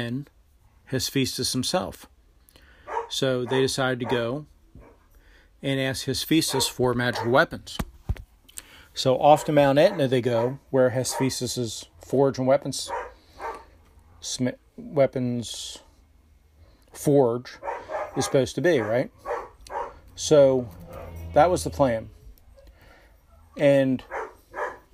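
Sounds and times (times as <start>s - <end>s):
speech: 0.0s - 2.1s, 3.1s - 4.5s, 5.6s - 7.9s, 9.0s - 13.1s, 14.2s - 15.8s, 17.0s - 19.3s, 20.2s - 22.2s, 23.6s - 24.2s
dogs acting up and barking in the background: 2.8s - 5.1s, 6.4s - 7.5s, 9.6s - 11.5s, 12.8s - 13.8s, 17.5s - 21.8s, 22.4s - 24.9s.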